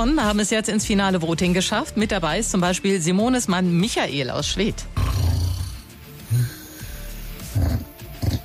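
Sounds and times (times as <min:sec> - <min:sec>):
speech: 0:00.0 - 0:05.0
man snoring in his sleep: 0:05.0 - 0:08.4.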